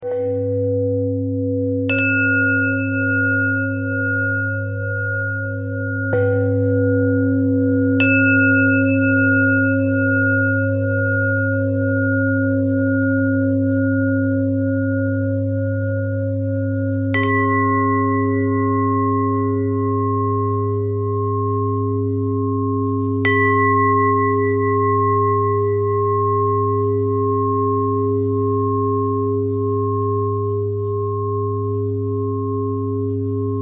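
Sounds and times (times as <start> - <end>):
bells: 0.0 - 33.5.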